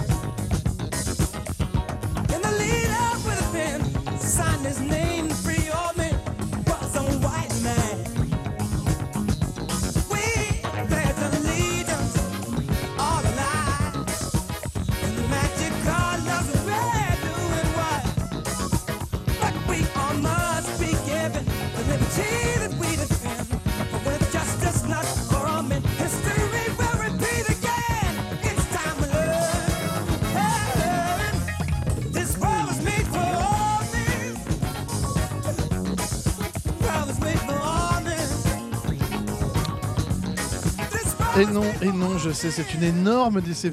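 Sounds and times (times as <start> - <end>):
keyboard bass line in a soul song: 0.0 - 43.7
soul song with dense instrumentation: 0.0 - 43.7
speech: 41.4 - 43.7.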